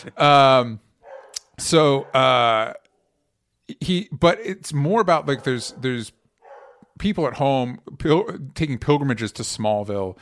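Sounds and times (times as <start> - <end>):
speech: 0.0 - 0.9, 1.6 - 2.8, 3.7 - 6.2, 7.0 - 10.2
dog barking: 1.0 - 2.6, 5.2 - 6.9.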